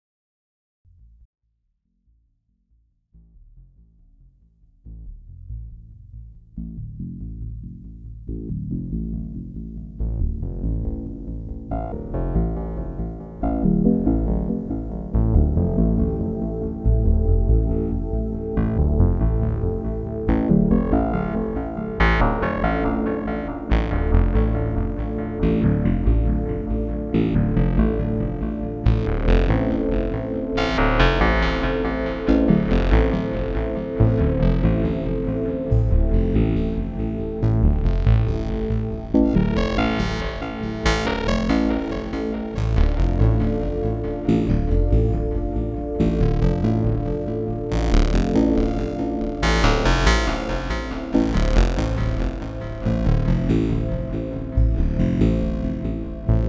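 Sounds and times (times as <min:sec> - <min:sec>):
synthesizer: 0:06.6 - 0:56.4.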